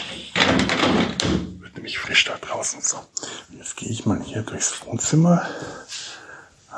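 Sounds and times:
door pushed shut with a firm thump: 0.3s - 1.6s
speech: 4.4s - 5.7s.

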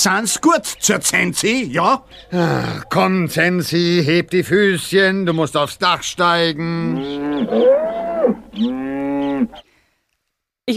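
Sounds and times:
speech: 0.0s - 8.8s
cow mooing: 6.7s - 9.6s.

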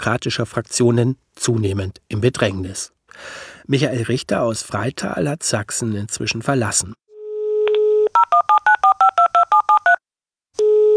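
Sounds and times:
speech: 0.0s - 7.0s
telephone dial tone: 7.4s - 10.0s, 10.6s - 10.9s.

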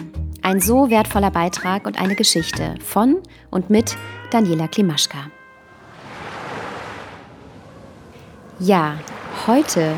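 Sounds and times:
speech: 0.5s - 5.4s, 8.6s - 9.9s
sea waves while sailing on a windy day: 5.1s - 9.9s
wind while sailing on a windy day: 5.3s - 9.9s.

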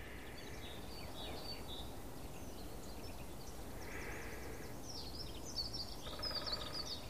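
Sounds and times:
songbird fast melodic twittering: 0.0s - 7.0s
steady outdoor noise: 0.0s - 7.0s.

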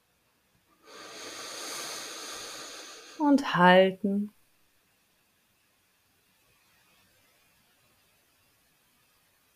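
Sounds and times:
slow deep breath in during a relaxation breathing exercise: 0.8s - 3.2s
speech: 3.2s - 4.4s.

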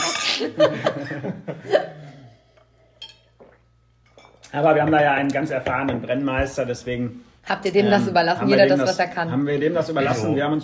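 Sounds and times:
speech: 0.4s - 2.1s, 4.5s - 10.6s
laughter: 0.4s - 2.2s
glasses clinking in a toast: 2.9s - 4.5s
lively voices: 4.8s - 10.6s.

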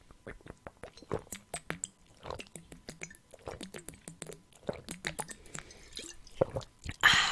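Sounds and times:
person sipping and swallowing water: 0.0s - 7.3s
breathy exhale: 7.0s - 7.3s.

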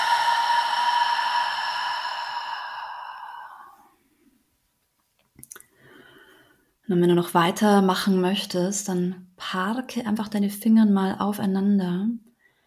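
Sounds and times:
long deliberate exhale through open lips during yoga breathing practice: 0.0s - 3.9s
speech: 6.9s - 12.2s.

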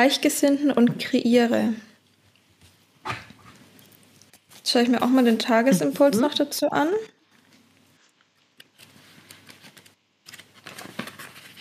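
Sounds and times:
speech: 0.0s - 1.9s, 4.7s - 7.2s
playing cards being shuffled: 7.5s - 11.5s
pages being leafed through: 8.0s - 11.5s.

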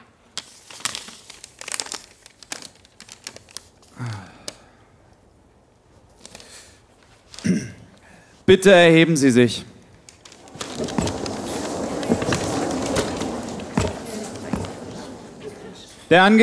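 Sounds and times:
paper letter rustling and crinkling as it is unfolded and handled: 0.3s - 4.0s, 6.0s - 7.6s, 9.9s - 15.8s
speech: 8.5s - 9.7s, 16.1s - 16.4s.

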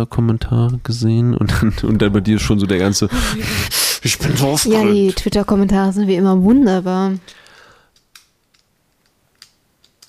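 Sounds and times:
speech: 0.0s - 7.4s
laughter: 1.4s - 5.3s
small sharp plastic clicks of a fidget cube: 7.2s - 10.0s.

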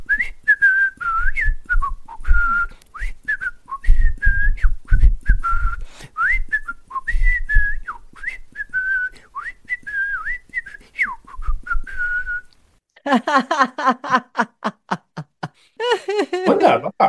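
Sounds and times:
person whistling a lively melody: 0.0s - 12.5s
breathy chuckling laughter: 13.0s - 16.6s.

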